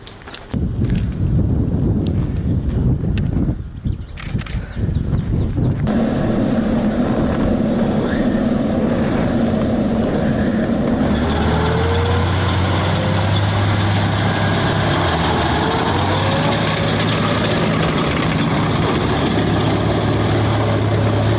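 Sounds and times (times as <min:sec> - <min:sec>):
gusty wind rumbling against the microphone: 0:00.0 - 0:21.3
drone motor humming overhead: 0:05.8 - 0:21.3.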